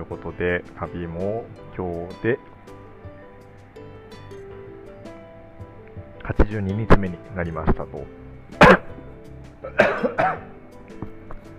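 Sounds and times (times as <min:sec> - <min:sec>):
speech: 0:00.0 - 0:02.8, 0:06.3 - 0:08.2, 0:09.6 - 0:10.6
person coughing: 0:08.6 - 0:08.9, 0:09.6 - 0:10.5.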